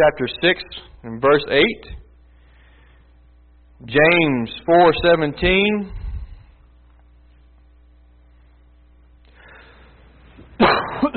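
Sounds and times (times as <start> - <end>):
speech: 0.0 - 2.0, 3.8 - 6.0
steady electrical hum: 0.0 - 11.1
loud harsh cough from a lingering cough: 10.6 - 11.1.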